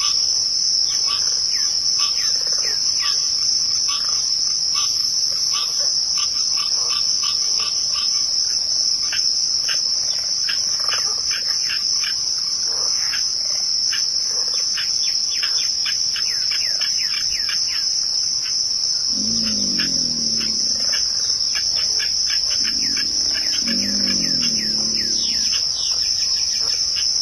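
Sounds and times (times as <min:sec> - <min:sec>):
high continuous cricket trill in a nighttime marsh: 0:00.0 - 0:27.2
low croaking in a nighttime marsh: 0:19.0 - 0:26.0.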